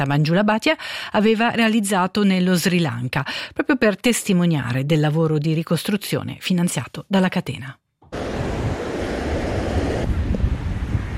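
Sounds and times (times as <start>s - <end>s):
speech: 0.0s - 7.8s
gusting wind buffeting the microphone: 8.1s - 11.1s
surf breaking on a shore by a seaside village in Batticaloa Sri Lanka: 8.1s - 11.1s.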